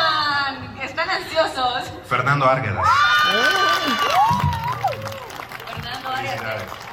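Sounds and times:
speech: 1.4s - 4.5s, 6.2s - 6.8s
audience shouting and cheering at award ceremony: 2.8s - 6.9s.

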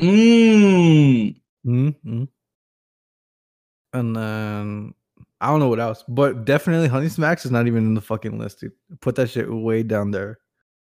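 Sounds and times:
speech: 0.0s - 0.7s, 3.9s - 10.4s
person yawning: 0.0s - 2.3s.

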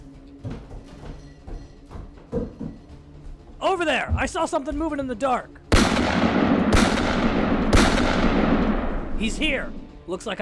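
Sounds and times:
speech: 3.6s - 5.6s, 9.2s - 10.3s
gunshots: 5.7s - 9.8s.

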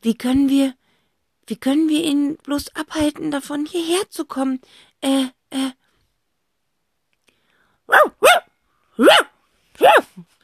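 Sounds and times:
speech: 0.0s - 0.8s, 1.5s - 5.8s, 7.9s - 10.4s
loud dog barking: 7.9s - 10.2s.

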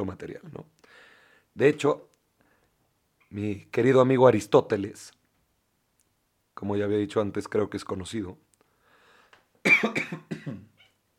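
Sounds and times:
speech: 0.0s - 2.1s, 3.3s - 5.2s, 6.6s - 8.4s, 9.6s - 10.6s
person coughing: 9.6s - 10.8s.

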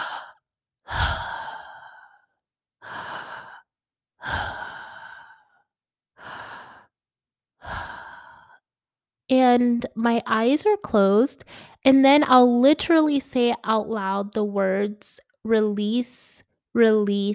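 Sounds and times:
deep breaths in a relaxation exercise: 0.0s - 7.0s, 7.6s - 8.6s, 11.4s - 11.8s
speech: 9.3s - 17.3s.

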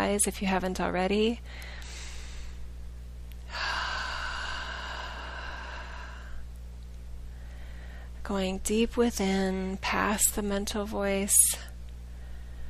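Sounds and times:
steady low hum: 0.0s - 12.6s
speech: 0.1s - 1.8s, 8.3s - 11.7s
deep breath during a guided meditation: 1.5s - 2.7s, 3.5s - 6.4s, 7.3s - 8.2s, 12.1s - 12.6s.

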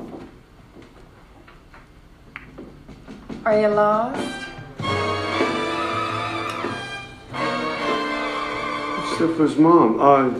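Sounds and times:
speech: 3.5s - 4.4s, 9.2s - 10.3s
basement door creaking and thumping open: 4.1s - 9.0s.

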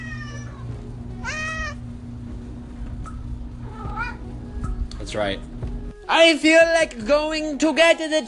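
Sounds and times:
cat meowing insistently, begging for food: 0.0s - 1.8s, 3.6s - 4.3s
steady low hum: 0.0s - 7.7s
speech: 5.1s - 8.2s.

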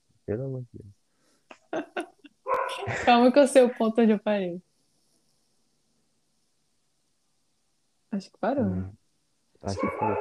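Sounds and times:
speech: 0.3s - 1.0s, 2.7s - 4.7s, 8.2s - 9.0s, 9.6s - 10.2s
laughter: 2.7s - 3.9s, 9.7s - 10.2s
several dogs barking: 9.7s - 10.2s.

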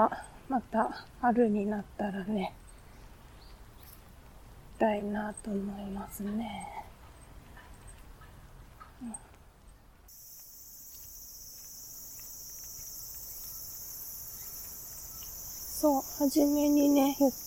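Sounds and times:
speech: 0.0s - 2.6s, 4.8s - 6.9s, 9.0s - 9.2s, 15.8s - 17.4s
large brown cicada or bear cicada singing: 10.1s - 17.4s.

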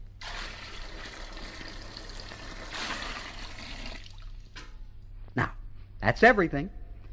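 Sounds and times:
water from Niagara Falls pouring into a witch's cauldron: 0.2s - 4.5s
speech: 5.4s - 6.8s.

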